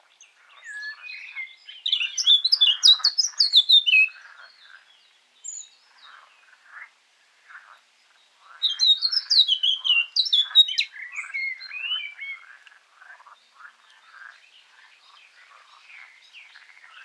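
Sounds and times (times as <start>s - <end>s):
Eurasian blackcap Sylvia atricapilla song: 1.2s - 4.1s, 8.7s - 12.4s.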